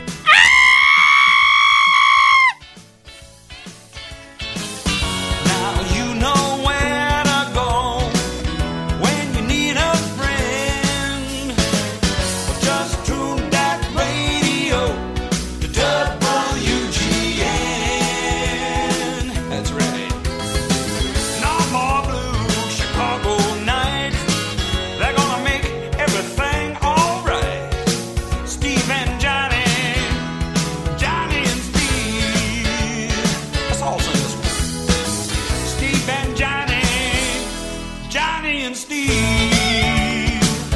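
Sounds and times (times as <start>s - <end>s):
busy full-band music: 0.0s - 40.7s
person screaming out an open window: 0.2s - 2.6s.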